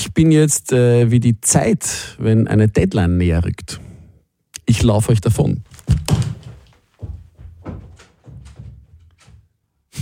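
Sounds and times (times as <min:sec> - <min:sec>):
speech: 0:00.0 - 0:03.9, 0:04.7 - 0:06.1
dull knocks and rattles: 0:05.7 - 0:09.6
door slamming shut with a heavy thump: 0:05.9 - 0:06.6.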